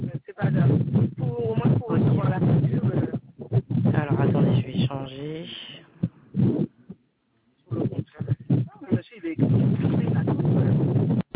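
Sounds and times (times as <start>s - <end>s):
strong wind buffeting a phone microphone during a phone call: 0.0s - 5.1s, 7.7s - 11.3s.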